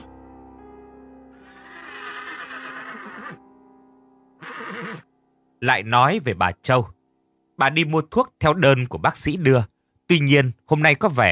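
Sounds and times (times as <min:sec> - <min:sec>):
steady low tone: 0:00.0 - 0:01.4, 0:03.4 - 0:04.4, 0:05.0 - 0:11.3
white horse neighing: 0:01.4 - 0:03.4, 0:04.4 - 0:05.1
speech: 0:05.6 - 0:07.0, 0:07.6 - 0:11.3.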